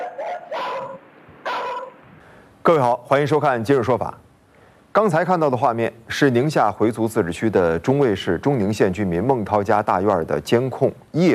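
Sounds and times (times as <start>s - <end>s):
guard dog barking furiously in a courtyard at night: 0.0s - 2.0s
speech: 2.6s - 4.2s, 5.0s - 11.3s.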